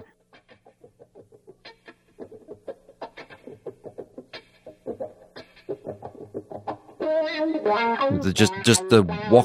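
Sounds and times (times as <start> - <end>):
speech: 7.1 - 9.4
voice imitating the wah-wah guitar opening of a rock song: 8.1 - 9.4.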